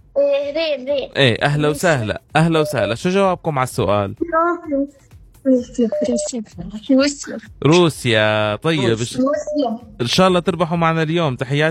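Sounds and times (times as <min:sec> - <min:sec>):
speech: 0:00.2 - 0:11.7
electronic telephone tone marking an incoming call on a radio phone-in: 0:02.6 - 0:02.9, 0:05.8 - 0:06.4.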